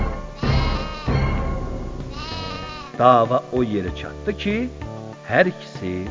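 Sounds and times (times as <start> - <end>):
two quarreling goats bleating: 0.4 - 1.4, 2.1 - 3.0
speech: 3.0 - 6.1.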